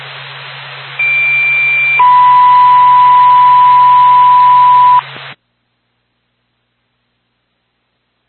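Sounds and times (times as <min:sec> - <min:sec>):
radio hiss: 0:00.0 - 0:05.4
fire department dispatch paging tone over radio: 0:01.0 - 0:05.0.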